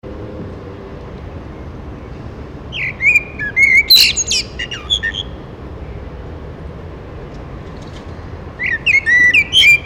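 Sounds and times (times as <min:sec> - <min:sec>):
Eurasian blackbird Turdus merula giving a mellow whistled phrase: 0:02.7 - 0:05.4, 0:08.6 - 0:09.8.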